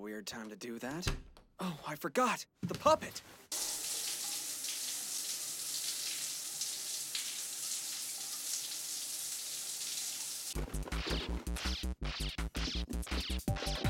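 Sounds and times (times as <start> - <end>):
speech: 0.0 - 3.8, 11.3 - 13.8
shower water running: 3.5 - 10.6.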